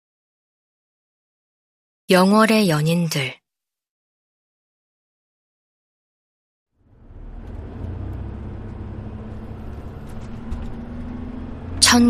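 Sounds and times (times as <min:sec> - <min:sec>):
speech: 0:02.1 - 0:03.4
tour bus engine rumble on a mountain road: 0:06.8 - 0:12.0
tour bus rattling and mechanical clatter along a mountain road: 0:07.2 - 0:11.9.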